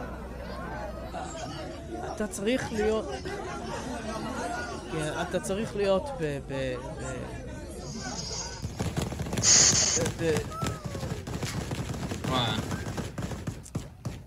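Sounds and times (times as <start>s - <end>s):
people talking and shouting in a busy outdoor scene: 0.0s - 14.1s
speech: 2.2s - 7.5s, 9.4s - 10.7s, 12.3s - 12.7s
bursts of gunfire outside Kabul airport: 8.6s - 14.2s.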